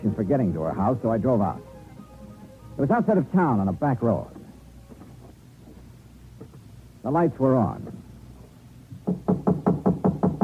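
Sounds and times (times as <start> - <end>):
speech: 0.2 - 1.7, 2.8 - 4.4, 7.0 - 8.0
knocking on the door of a house outside town on a back road: 8.9 - 10.4.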